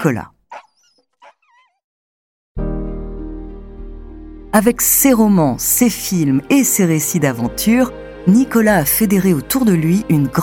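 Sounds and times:
speech: 0.0s - 0.3s, 4.5s - 10.4s
sled dogs yipping and whining: 0.5s - 1.8s.

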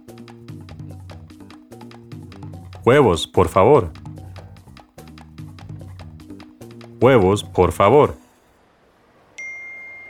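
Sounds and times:
speech: 2.8s - 4.0s, 7.0s - 8.2s
phone notification ding for an incoming message: 9.4s - 10.0s.

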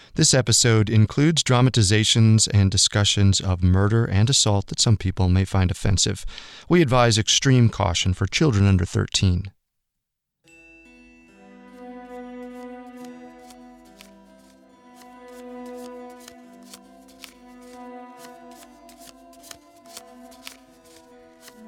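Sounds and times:
speech: 0.2s - 9.6s
low musical drone: 10.5s - 21.6s
deck of fortune-telling cards being shuffled: 12.4s - 21.6s.

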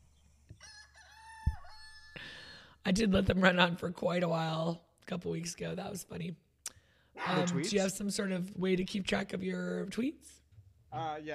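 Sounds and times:
rooster crowing cock-a-doodle-doo: 0.6s - 2.2s, 7.2s - 7.8s
speech: 2.8s - 6.4s, 7.3s - 11.3s.

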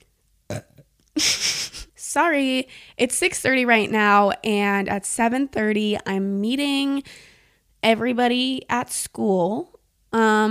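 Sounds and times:
person burping: 0.5s - 0.9s
speech: 2.2s - 10.4s.

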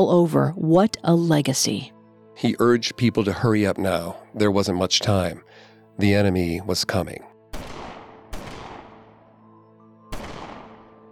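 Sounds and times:
speech: 0.0s - 7.3s
gunshots: 7.5s - 9.1s, 10.1s - 11.0s.

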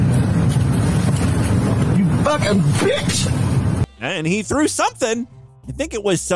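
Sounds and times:
truck engine idling or driving: 0.0s - 3.9s
speech: 2.3s - 3.4s, 4.0s - 6.3s.

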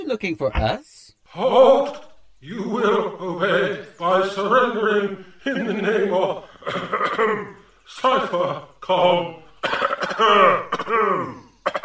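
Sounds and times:
speech: 0.1s - 11.8s
laughter: 1.3s - 9.3s
nasty rasping cough with groaning vocal tail: 6.4s - 7.7s, 9.6s - 11.8s.

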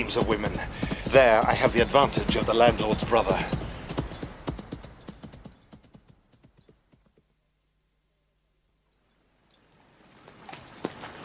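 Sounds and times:
speech: 0.0s - 3.6s
horses' hooves clip-clopping, treading uneasily: 0.0s - 7.3s, 10.3s - 11.2s.

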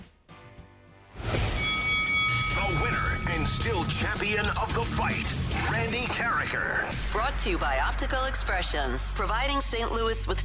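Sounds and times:
bell ringing with bright metallic tone: 1.4s - 5.0s
speech: 3.4s - 10.4s.

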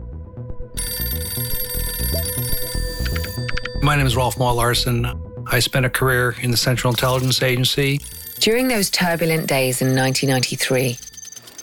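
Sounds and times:
telephone bell ringing: 0.8s - 4.6s, 8.0s - 11.6s
speech: 3.9s - 11.1s.

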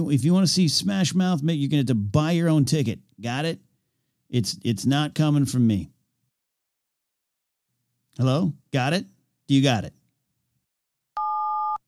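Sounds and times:
speech: 0.0s - 3.7s, 4.3s - 5.9s, 8.2s - 10.0s
telephone keypad tone, two-note electronic beep: 11.2s - 11.8s.

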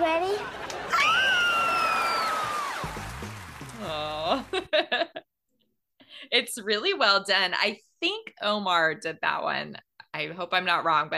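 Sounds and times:
laughter: 0.4s - 2.9s, 3.7s - 5.2s
group of people screaming excitedly: 0.8s - 3.1s
speech: 6.6s - 11.1s.

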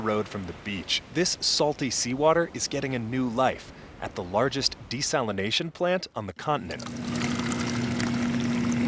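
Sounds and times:
speech: 0.0s - 7.3s
low constant hum: 0.0s - 8.8s
water poured from a tap into a glass: 6.7s - 8.8s.

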